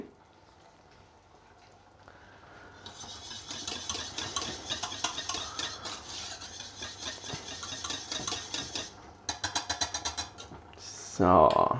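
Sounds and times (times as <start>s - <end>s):
spoon stirring thickening béchamel sauce in a pot: 2.8s - 10.6s
speech: 11.2s - 11.7s.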